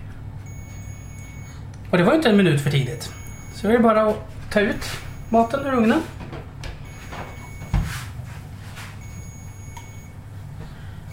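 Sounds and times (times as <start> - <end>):
steady low hum: 0.0 - 1.9, 2.8 - 11.1
cooking thermometer beeping: 0.4 - 1.6, 2.8 - 3.9, 4.5 - 6.0, 6.8 - 7.9, 9.0 - 10.2
speech: 1.9 - 6.2.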